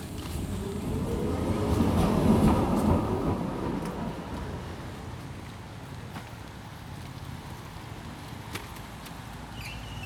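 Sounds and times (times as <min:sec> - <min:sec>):
tram rolling on rails: 0:00.0 - 0:06.0.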